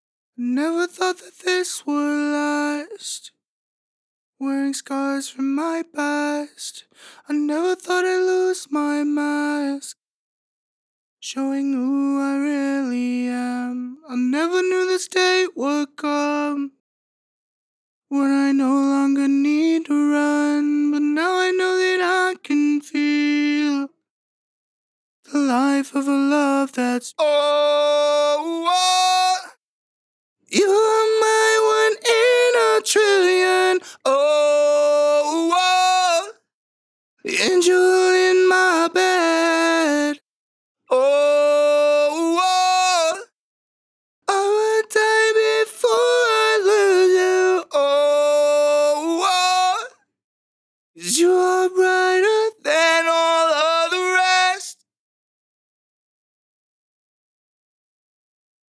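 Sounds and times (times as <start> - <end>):
dry male a cappella harmony in B minor at 140 bpm: 0.4 - 3.3, 4.4 - 10.0, 11.2 - 16.8, 18.1 - 23.9, 25.3 - 29.6, 30.5 - 36.4, 37.2 - 40.2, 40.9 - 43.4, 44.3 - 50.0, 51.0 - 54.8.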